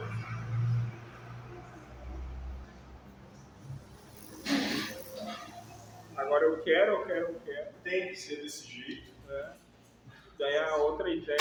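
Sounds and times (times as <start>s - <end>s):
car passing by: 0.0s - 6.2s
speech: 6.4s - 9.6s, 10.4s - 11.3s.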